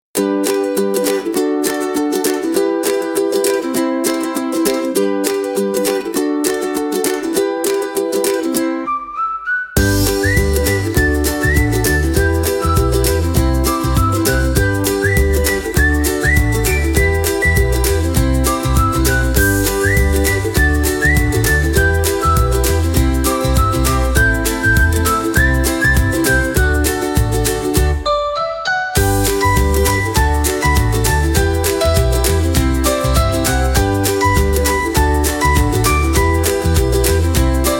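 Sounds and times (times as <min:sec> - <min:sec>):
carefree happy upbeat ukulele music: 0:00.2 - 0:37.7
whistling: 0:08.7 - 0:26.9.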